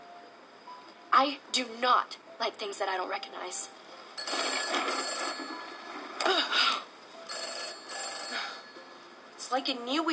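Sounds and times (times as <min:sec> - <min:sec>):
speech: 0:01.2 - 0:03.8, 0:09.5 - 0:10.1
old-fashioned telephone bell ringing: 0:04.2 - 0:06.2, 0:07.3 - 0:09.0.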